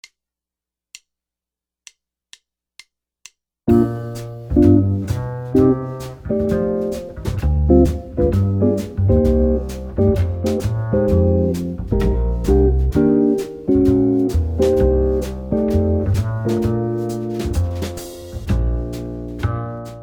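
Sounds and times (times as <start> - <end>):
jazz guitar playing rhythm changes: 3.7 - 20.0.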